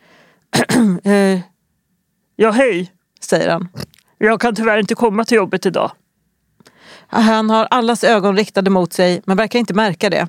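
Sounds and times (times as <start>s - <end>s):
man clearing his throat on a bus: 0.5s - 1.1s
speech: 0.8s - 1.5s, 2.4s - 6.0s, 6.9s - 10.2s.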